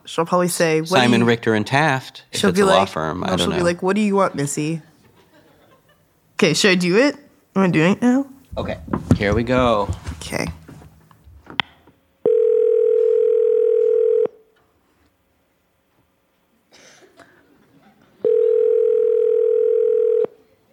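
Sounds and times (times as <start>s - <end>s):
speech: 0.1s - 4.9s, 6.4s - 10.6s
electronic ringback tone on an outgoing phone call: 12.2s - 14.4s, 18.2s - 20.3s
soft chuckle: 17.2s - 18.6s.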